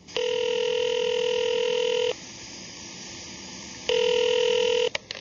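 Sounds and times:
telephone dial tone: 0.2 - 2.1, 3.9 - 5.0.

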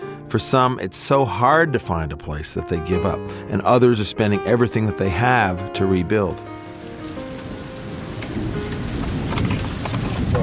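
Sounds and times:
speech: 0.3 - 6.6
rain pouring during a storm: 5.9 - 10.4.

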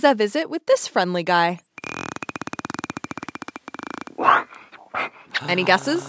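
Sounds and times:
speech: 0.0 - 1.7, 5.0 - 6.0
bottlenose dolphin rattling burst of clicks: 1.6 - 4.6.

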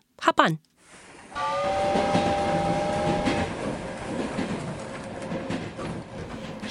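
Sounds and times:
speech: 0.2 - 0.7
train whistle: 1.3 - 3.8
train rumbling along rails: 1.3 - 6.6.

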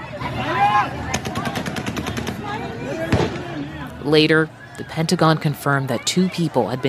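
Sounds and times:
crowd shouting on an airport tarmac: 0.0 - 6.8
gunshots on an airport tarmac: 1.1 - 3.6
speech: 4.1 - 6.8.

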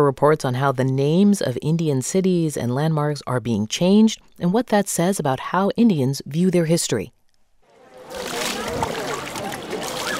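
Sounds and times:
speech: 0.0 - 7.2
crowd's indistinct voices: 7.7 - 10.1
pilgrims splashing in the Ganges River: 7.7 - 10.1.

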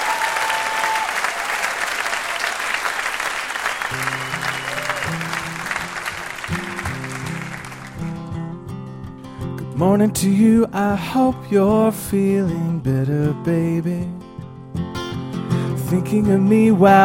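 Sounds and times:
large studio audience applause: 0.0 - 8.2
speech: 9.8 - 14.2, 15.9 - 17.0.

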